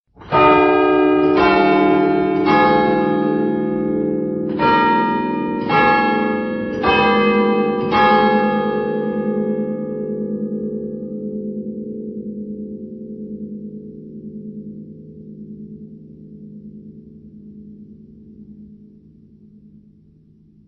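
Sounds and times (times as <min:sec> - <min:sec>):
Christian church bell ringing seven notes: 0:00.2 - 0:18.8.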